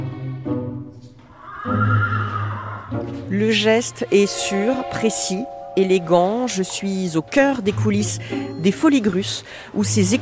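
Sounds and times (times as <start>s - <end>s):
stallion whinnying and neighing: 1.3s - 3.3s
speech: 3.3s - 10.2s.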